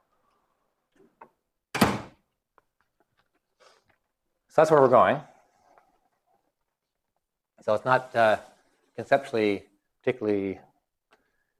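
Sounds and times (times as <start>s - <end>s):
door swinging shut with a solid thump: 1.7s - 2.2s
speech: 4.6s - 5.3s, 7.6s - 10.7s.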